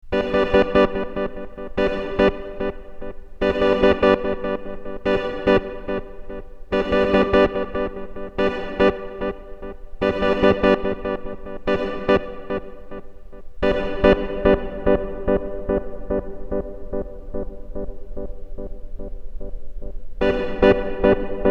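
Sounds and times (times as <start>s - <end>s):
organ through delay and reverb effects, direct line recording: 0.1s - 21.5s.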